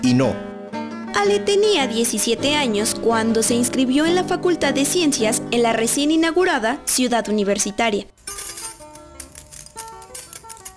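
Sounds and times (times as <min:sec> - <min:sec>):
speech: 0:00.0 - 0:00.5, 0:01.2 - 0:08.3
bunch of car keys jingling as they are handed over: 0:08.1 - 0:10.7.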